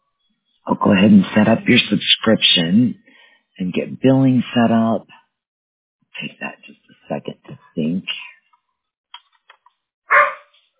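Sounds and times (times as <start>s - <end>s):
speech: 0.7s - 3.0s, 3.6s - 5.2s, 6.2s - 8.3s
two-year-old puppy yipping and barking: 10.1s - 10.5s.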